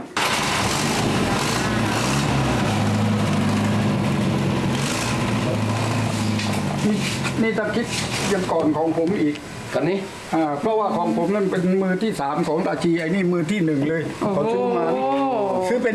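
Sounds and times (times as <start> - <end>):
car engine starting and idling: 0.2 - 8.4
speech: 7.4 - 15.9.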